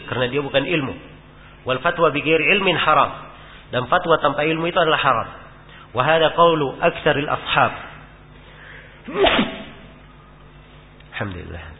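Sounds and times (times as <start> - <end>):
speech: 0.1 - 7.9, 9.0 - 9.6, 11.2 - 11.7
sneeze during a religious lecture: 9.1 - 10.0.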